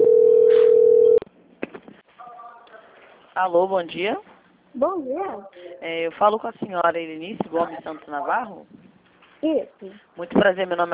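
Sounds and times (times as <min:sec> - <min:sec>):
telephone line tone during call transfer: 0:00.0 - 0:01.2
speech: 0:03.4 - 0:08.8, 0:09.4 - 0:10.9.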